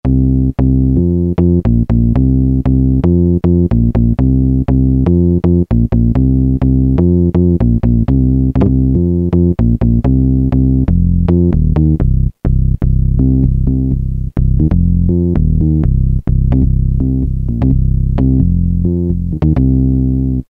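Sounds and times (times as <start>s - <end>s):
Roland SH101 synthesizer bass: 0.0s - 20.4s.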